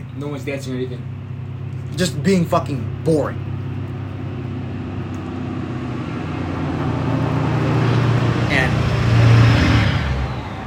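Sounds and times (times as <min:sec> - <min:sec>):
loud truck engine rumbling past: 0:00.0 - 0:10.6
speech: 0:00.2 - 0:01.2, 0:01.8 - 0:03.5.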